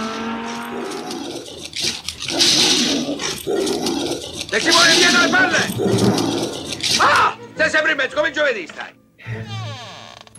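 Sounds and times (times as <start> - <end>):
car engine whining and revving: 0.0 - 0.8
dog barking and snarling while chasing: 0.0 - 7.3
speech: 4.5 - 9.0.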